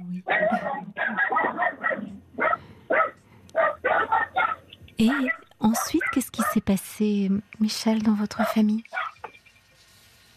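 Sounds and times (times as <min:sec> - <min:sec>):
small dogs squabbling, yapping and snarling: 0:00.3 - 0:06.6, 0:08.4 - 0:09.4
speech: 0:05.0 - 0:09.0.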